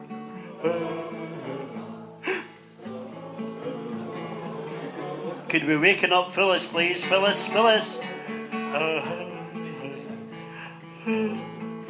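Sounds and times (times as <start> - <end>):
laughter: 0.5 - 8.5
speech: 0.6 - 1.4, 5.5 - 9.3
person giving a long voiced yawn: 2.2 - 2.6.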